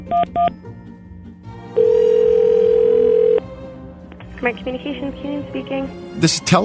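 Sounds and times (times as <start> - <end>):
telephone keypad beeps: 0.1 - 0.5
speech: 0.1 - 0.8, 4.4 - 6.6
telephone dial tone while placing a call: 1.8 - 3.4.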